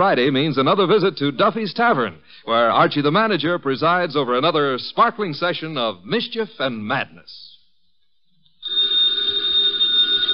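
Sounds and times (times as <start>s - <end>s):
speech: 0.0s - 7.5s
old office telephone bell ringing: 8.6s - 10.3s.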